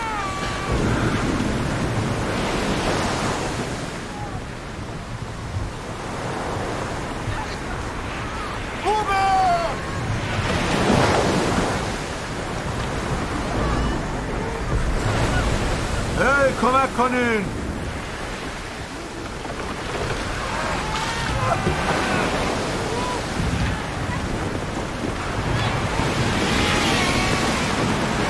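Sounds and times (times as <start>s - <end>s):
heavy waves of a stormy sea crashing: 0.0s - 28.2s
speech: 17.0s - 17.5s.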